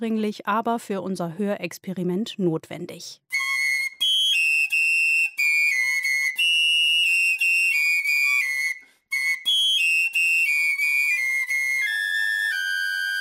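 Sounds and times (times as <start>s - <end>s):
speech: 0.0s - 3.3s
several high piccolo flute tones played together for a hearing experiment: 3.3s - 13.1s.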